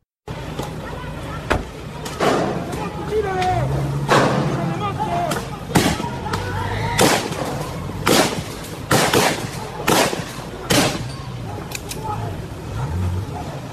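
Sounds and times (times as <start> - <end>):
voices: 0.3 - 13.7
police gunshots fired at close range: 5.7 - 6.2, 7.0 - 11.1.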